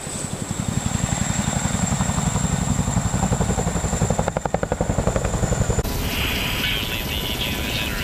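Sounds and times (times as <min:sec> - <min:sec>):
Chinook heavy-lift helicopter flying with rotor thumping: 0:00.0 - 0:08.0
Chinook heavy-lift helicopter constant high whine: 0:00.1 - 0:08.0.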